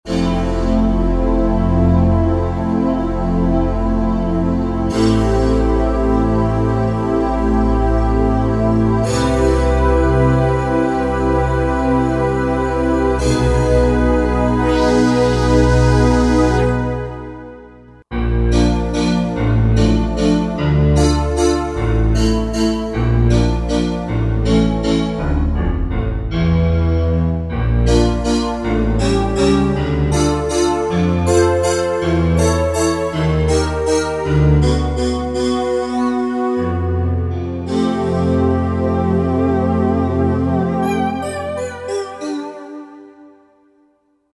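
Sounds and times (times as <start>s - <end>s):
Roland JD-990 synthesizer factory patch: 0.1s - 43.6s.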